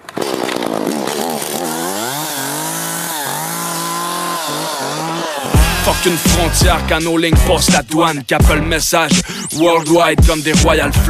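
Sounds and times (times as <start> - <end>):
chainsaw revving: 0.0 - 7.8
speech: 5.9 - 11.0.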